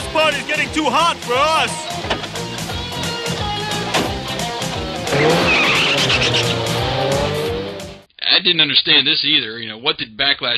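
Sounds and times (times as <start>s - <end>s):
speech: 0.2s - 2.2s, 8.4s - 10.5s
car engine roaring as the vehicle peels away: 1.9s - 8.1s
loud sustained tire squeal: 5.1s - 7.5s.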